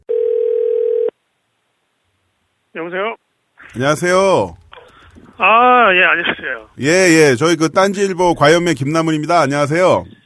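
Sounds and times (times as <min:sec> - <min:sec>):
telephone dial tone while connecting call: 0:00.0 - 0:01.1
speech: 0:02.8 - 0:04.6, 0:05.4 - 0:10.2.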